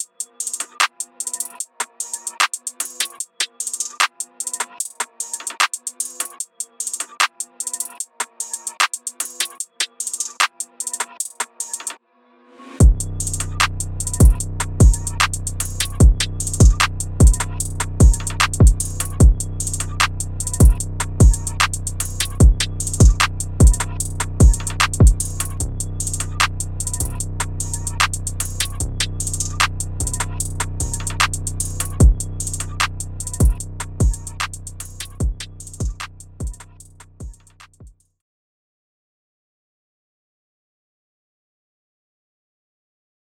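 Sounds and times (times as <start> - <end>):
vocal drum sounds: 12.8 - 37.4.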